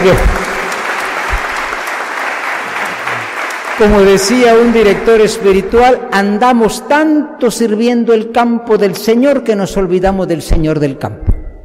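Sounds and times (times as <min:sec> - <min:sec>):
speech: 0:00.0 - 0:00.4, 0:03.8 - 0:11.4
church congregation applauding at a diaconal ordination: 0:00.0 - 0:05.5.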